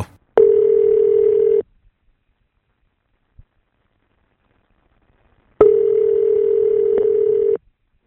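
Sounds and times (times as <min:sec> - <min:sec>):
telephone dial tone at the start of a call: 0:00.4 - 0:01.6, 0:05.6 - 0:07.6.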